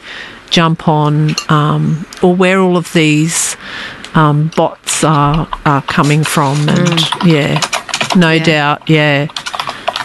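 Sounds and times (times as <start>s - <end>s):
speech: 0.5s - 9.5s
typing on a computer keyboard: 5.3s - 10.0s.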